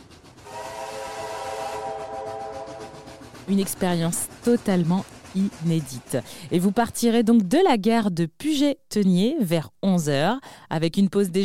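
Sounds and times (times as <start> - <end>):
steam train rumbling and chuffing: 0.0 - 7.6
last-century steam locomotive whistle blast: 0.4 - 3.4
speech: 3.5 - 11.4.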